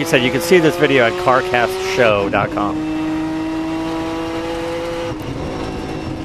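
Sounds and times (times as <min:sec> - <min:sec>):
speech: 0:00.0 - 0:03.0
race car engine on a track: 0:00.0 - 0:06.2.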